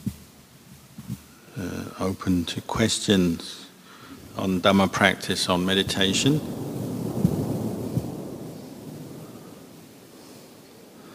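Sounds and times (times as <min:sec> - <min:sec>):
rainstorm: 0:00.0 - 0:11.1
speech: 0:01.6 - 0:03.6, 0:04.4 - 0:06.7
thunder rolling: 0:04.2 - 0:11.1.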